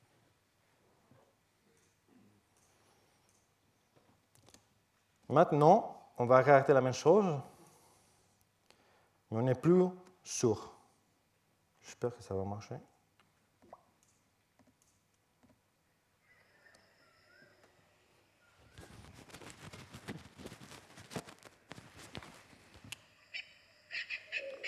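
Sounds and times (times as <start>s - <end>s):
speech: 5.3s - 7.5s, 9.3s - 10.8s, 11.8s - 12.9s
bird calls in a jungle: 23.2s - 24.6s.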